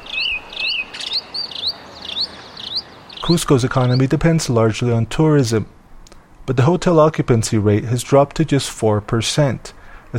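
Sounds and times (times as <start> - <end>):
birds chirping in a quiet city square: 0.0 - 5.1
soft hiss: 0.0 - 10.1
speech: 3.3 - 5.8, 6.5 - 10.1.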